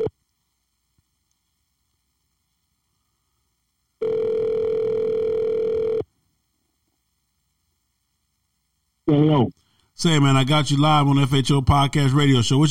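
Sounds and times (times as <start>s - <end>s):
ringback tone of an outgoing phone call: 4.0s - 6.0s
speech: 9.4s - 12.7s.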